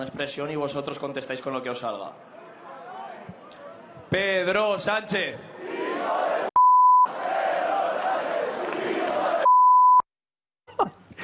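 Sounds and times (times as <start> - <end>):
speech: 0.0 - 2.4, 4.1 - 5.5
rowdy crowd shouting: 2.2 - 4.2, 5.4 - 6.5, 7.1 - 9.5
loud steady censorship bleeps: 6.6 - 7.1, 9.4 - 10.0.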